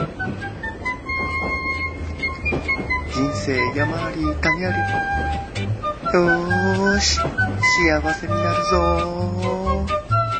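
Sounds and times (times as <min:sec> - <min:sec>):
train rolling along rails: 0:00.0 - 0:10.3
speech: 0:03.2 - 0:10.0.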